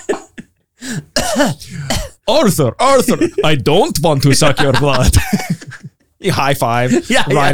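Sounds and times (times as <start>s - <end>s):
person imitating the hacking cough of someone with tuberculosis: 0.0s - 2.2s
speech: 1.4s - 5.6s, 6.2s - 7.5s
laughter: 3.0s - 3.6s, 4.2s - 6.0s, 6.8s - 7.5s.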